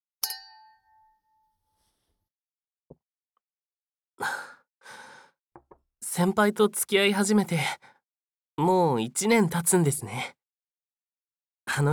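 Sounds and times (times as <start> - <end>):
two glasses clinking in a toast: 0.2 - 1.2
speech: 6.2 - 7.9, 8.6 - 10.4, 11.7 - 11.9.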